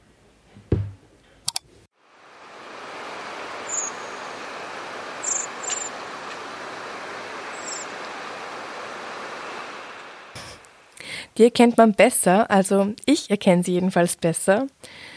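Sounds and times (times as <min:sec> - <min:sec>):
high-pitched bird calls: 0:03.1 - 0:10.1
speech: 0:11.4 - 0:15.1.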